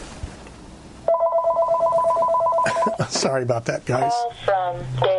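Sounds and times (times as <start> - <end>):
telephone ringing with a warbling electronic tone: 1.1 - 3.0
laughter: 2.7 - 3.3
speech: 3.0 - 5.1.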